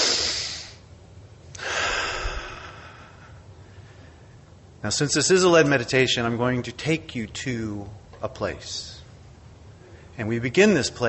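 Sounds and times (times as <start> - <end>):
deep breath during a guided seated meditation: 1.6 - 4.3
speech: 4.8 - 9.0, 10.2 - 11.0.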